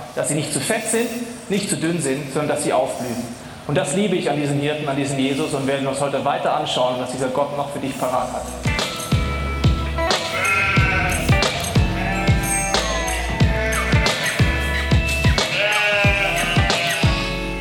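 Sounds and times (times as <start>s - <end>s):
speech: 0.2s - 8.7s
flock of sheep bleating: 10.1s - 17.4s.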